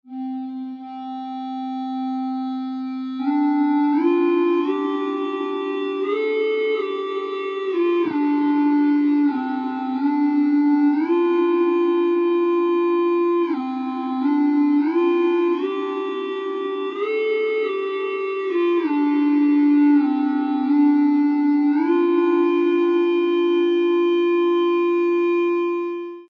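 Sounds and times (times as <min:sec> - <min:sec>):
fake ebow tone: 0:00.1 - 0:26.2.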